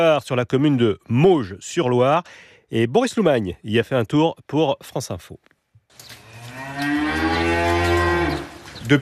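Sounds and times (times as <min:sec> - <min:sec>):
speech: 0:00.0 - 0:06.2, 0:06.8 - 0:07.2, 0:08.9 - 0:09.0
dairy cow mooing in a barn: 0:06.2 - 0:08.5.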